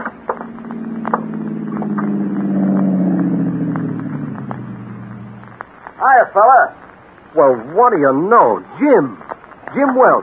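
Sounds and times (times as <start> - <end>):
car engine droning driving up a narrow dusty roadway to a dam: 0.0 - 5.9
tires crackling and popping on loose ground: 0.0 - 10.2
speech: 6.1 - 10.2.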